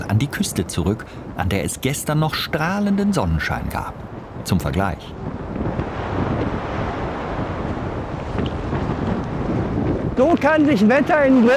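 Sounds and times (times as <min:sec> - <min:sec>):
hurricane-force wind gusts roaring on a coast: 0:00.0 - 0:11.5
speech: 0:00.1 - 0:05.5, 0:10.2 - 0:11.5.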